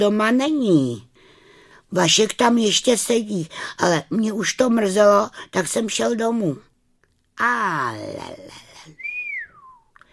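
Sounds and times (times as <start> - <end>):
speech: 0.0 - 1.1, 1.9 - 6.7, 7.4 - 9.0
gamekeeper whistling a downward sliding note: 9.0 - 10.0.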